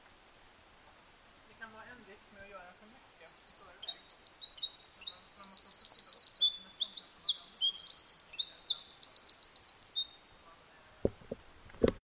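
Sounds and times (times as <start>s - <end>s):
Eurasian wren Troglodytes troglodytes singing high-pitched rapid trills and twittering notes: 3.2s - 10.5s.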